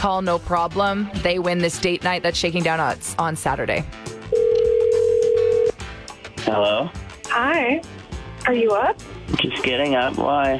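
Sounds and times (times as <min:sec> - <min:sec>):
speech: 0:00.0 - 0:04.1, 0:06.5 - 0:10.5
electronic telephone ringback tone: 0:04.3 - 0:05.8.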